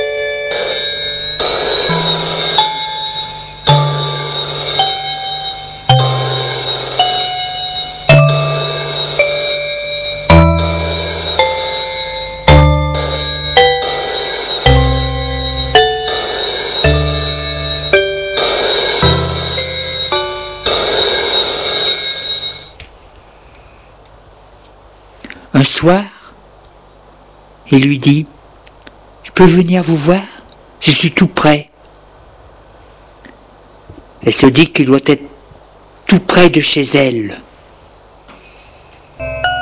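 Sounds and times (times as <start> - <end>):
telephone ringing with bell-like melodic tone: 0.0 - 22.8
speech: 25.8 - 26.0, 27.8 - 28.3, 29.4 - 31.7, 34.2 - 35.3, 36.1 - 37.5.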